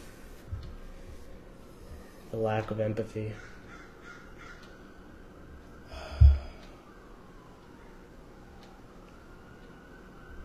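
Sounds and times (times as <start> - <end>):
steady low noise: 0.0 - 10.4
speech: 2.3 - 3.6
police siren whoop: 4.8 - 10.4.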